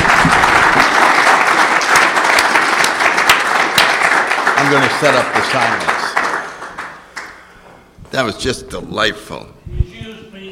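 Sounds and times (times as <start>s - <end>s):
audience applause at a live show: 0.0s - 7.4s
speech: 4.7s - 6.0s, 8.2s - 9.8s.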